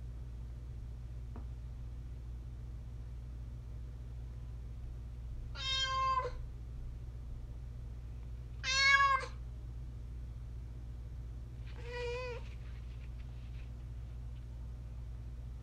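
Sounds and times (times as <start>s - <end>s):
steady low hum: 0.0s - 15.6s
domestic cat meowing: 5.6s - 6.4s, 8.6s - 9.4s, 11.7s - 12.5s.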